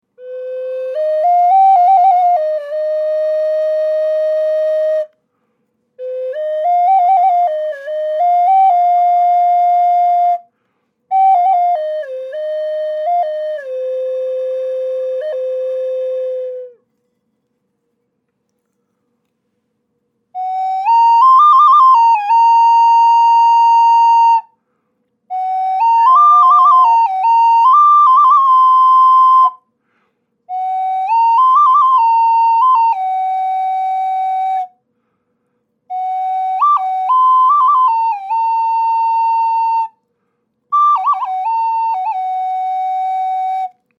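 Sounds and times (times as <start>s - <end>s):
large double flute: 0.0s - 17.0s, 20.3s - 29.8s, 30.4s - 43.9s.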